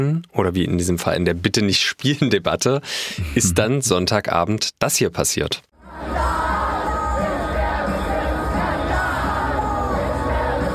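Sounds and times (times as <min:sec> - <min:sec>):
speech: 0:00.0 - 0:06.4
fairground crowd cheering, shouting and chanting to a song: 0:05.8 - 0:10.7.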